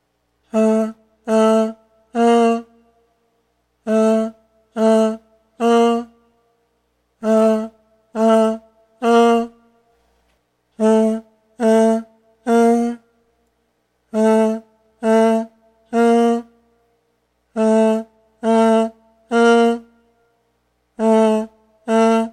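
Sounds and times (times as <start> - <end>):
voice: 0.5 - 2.7, 3.8 - 6.1, 7.2 - 9.6, 10.8 - 13.0, 14.1 - 16.5, 17.6 - 19.9, 21.0 - 22.3.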